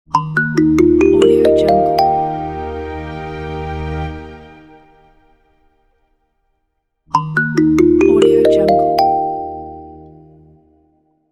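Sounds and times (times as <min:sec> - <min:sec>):
kalimba logo melody: 0:00.2 - 0:03.6, 0:07.2 - 0:10.3.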